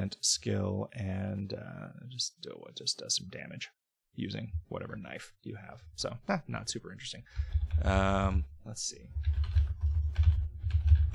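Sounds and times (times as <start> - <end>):
speech: 0.1 - 10.4
typing on a computer keyboard: 7.4 - 8.0, 9.2 - 11.1.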